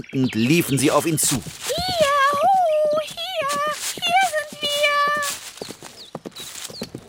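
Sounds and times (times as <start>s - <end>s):
speech: 0.0s - 2.0s
approaching horse hooves clip-clopping: 0.9s - 7.0s.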